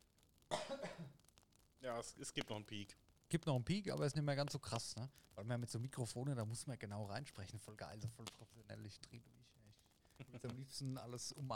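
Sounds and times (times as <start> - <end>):
single forced cough away from microphone: 0.5 - 1.2
speech: 1.8 - 9.6, 10.2 - 11.5.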